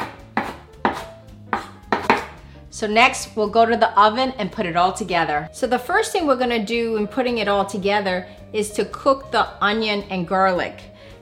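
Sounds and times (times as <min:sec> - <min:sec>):
knife roughly chopping fresh herb leaves and stems: 0:00.0 - 0:02.4
speech: 0:02.8 - 0:10.9.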